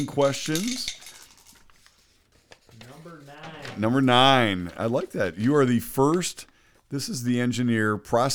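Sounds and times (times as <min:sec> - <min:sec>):
speech: 0:00.0 - 0:01.0, 0:03.8 - 0:08.3
dice rattling inside a glass: 0:00.0 - 0:01.8.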